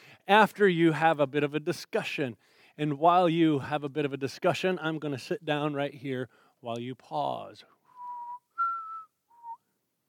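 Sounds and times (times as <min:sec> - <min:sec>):
speech: 0:00.3 - 0:07.8
person whistling a short tune: 0:07.9 - 0:09.7.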